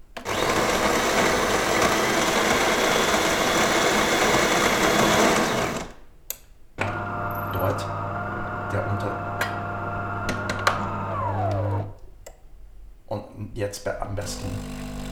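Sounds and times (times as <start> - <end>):
coffee machine grinding beans: 0.2 - 6.0, 6.8 - 12.0, 14.2 - 15.1.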